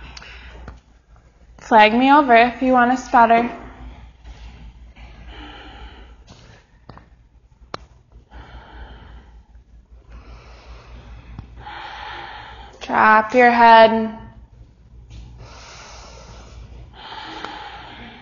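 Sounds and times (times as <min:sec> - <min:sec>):
speech: 0:01.7 - 0:03.6, 0:13.2 - 0:14.2
deep breathing during a yoga inversion: 0:03.6 - 0:07.2, 0:08.0 - 0:12.8, 0:15.1 - 0:18.2.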